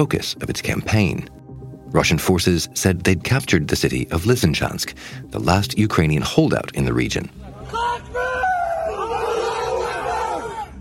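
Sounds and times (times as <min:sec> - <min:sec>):
speech: 0:00.0 - 0:08.2
group of men shouting in celebration: 0:07.6 - 0:10.7.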